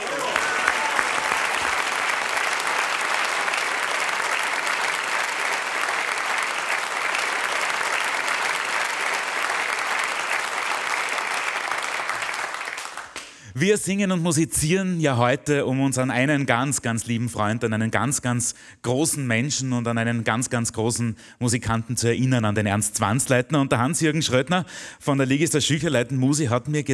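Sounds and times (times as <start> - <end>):
audience applause: 0.0 - 13.4
speech: 13.6 - 26.9.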